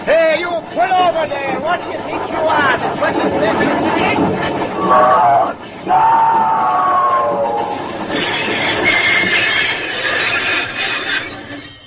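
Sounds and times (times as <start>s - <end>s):
speech: 0.0s - 6.6s
locomotive clattering on rails: 0.0s - 11.8s
high squealing tones: 2.4s - 11.8s.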